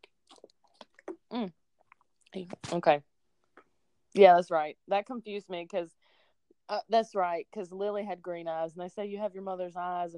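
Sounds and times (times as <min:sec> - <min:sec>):
voiced swallowing gulp: 0:00.0 - 0:02.0
person sipping water: 0:00.0 - 0:02.3
faint lip sounds: 0:00.0 - 0:02.9
speech: 0:01.3 - 0:01.6, 0:02.3 - 0:03.1, 0:04.2 - 0:06.0, 0:06.7 - 0:10.1.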